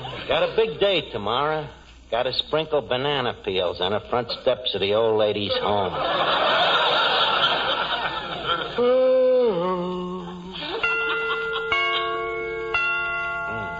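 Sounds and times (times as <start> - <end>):
speech: 0.3 - 7.2
person chuckling: 8.5 - 12.2
wavering tone: 8.8 - 13.7
clock chime striking the hour: 10.8 - 13.7.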